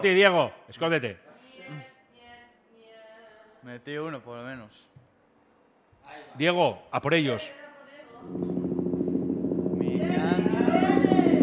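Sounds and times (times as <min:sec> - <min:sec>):
speech: 0:00.0 - 0:01.9, 0:03.6 - 0:04.9, 0:06.1 - 0:07.6, 0:08.2 - 0:08.7
helicopter rotor chopping overhead: 0:08.2 - 0:11.4
high whining tone: 0:08.2 - 0:11.4.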